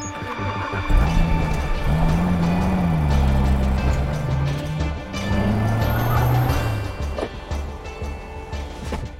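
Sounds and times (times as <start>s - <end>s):
car engine rumbling as car pulls up and stops: 0.7s - 8.5s.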